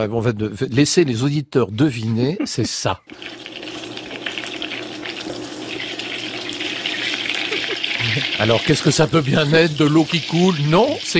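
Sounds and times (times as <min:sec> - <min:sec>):
speech: 0:00.0 - 0:03.5, 0:08.0 - 0:11.1
laughter: 0:02.0 - 0:03.1, 0:07.3 - 0:10.0
butter sizzling and crackling in a frying pan: 0:03.1 - 0:11.1.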